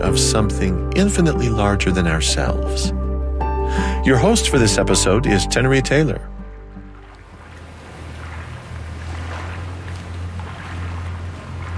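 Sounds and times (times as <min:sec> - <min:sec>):
speech: 0:00.0 - 0:03.0, 0:03.7 - 0:06.3
low constant rumble: 0:00.0 - 0:11.7
stream water rushing and burbling in London wilderness: 0:04.1 - 0:11.7.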